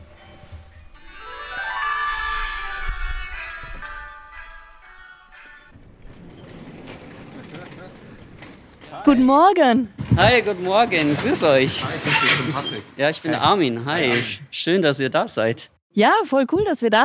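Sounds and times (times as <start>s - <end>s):
doorbell ringing with a bright electronic chime: 1.0s - 5.7s
speech: 9.1s - 17.0s.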